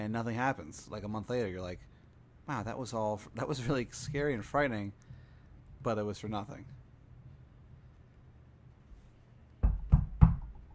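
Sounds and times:
speech: 0.0 - 1.9, 2.5 - 5.1, 5.8 - 6.8
firm knocks on a wooden door: 9.6 - 10.7.

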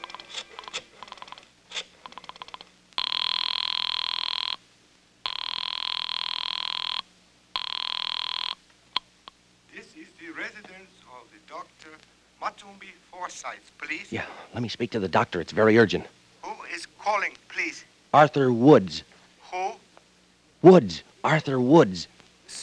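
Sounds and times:
long loud electric telephone rings: 0.0 - 4.6, 5.2 - 9.1
telephone dialing clicks: 0.0 - 4.6
speech: 12.4 - 16.2, 18.1 - 19.1, 20.6 - 22.2.

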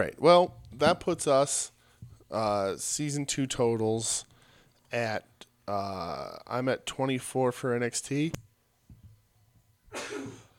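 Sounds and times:
speech: 0.0 - 4.3, 4.9 - 8.4
soft breaths: 1.7 - 2.3, 4.2 - 4.9
loud human sneeze: 9.9 - 10.5.

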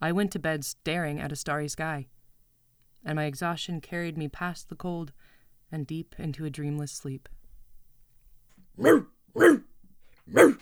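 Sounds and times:
speech: 0.0 - 2.2, 3.0 - 7.4, 8.8 - 9.7, 10.3 - 10.6
dog barking outdoors at night: 8.8 - 9.7, 10.3 - 10.6.

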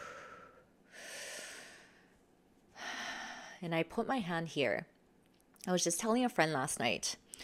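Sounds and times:
slow deep breath in and out: 0.0 - 3.6
speech: 3.6 - 5.0, 5.6 - 7.2.

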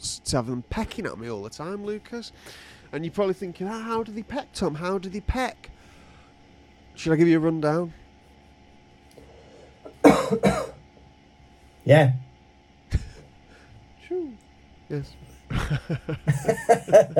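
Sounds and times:
speech: 0.3 - 5.8, 7.0 - 8.0, 10.3 - 10.7, 11.8 - 12.3, 14.1 - 17.1
person coughing: 9.9 - 10.8
laughter: 15.5 - 17.1.

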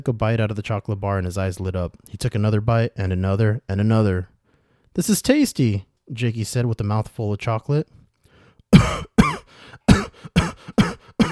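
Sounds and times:
speech: 0.0 - 4.3, 5.0 - 8.0, 8.7 - 9.2
short gasps: 4.4 - 4.9, 8.0 - 11.2
harsh hacking coughing fit: 8.7 - 11.2.

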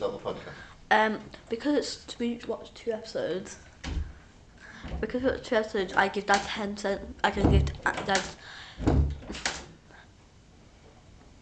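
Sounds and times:
speech: 0.0 - 4.0, 5.0 - 9.0
door swinging shut with a muffled thump: 3.8 - 4.2, 7.3 - 9.6.

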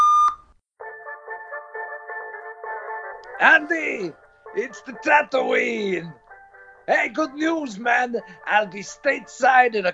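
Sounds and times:
electronic voicemail beep on a phone: 0.0 - 0.4
speech: 3.4 - 6.2, 6.9 - 9.9.

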